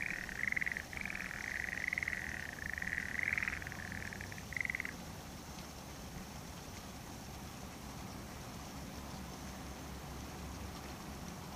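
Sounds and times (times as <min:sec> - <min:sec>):
frog calling in rapid pulsed trills: 0:00.0 - 0:05.0
steady background noise: 0:00.0 - 0:11.5.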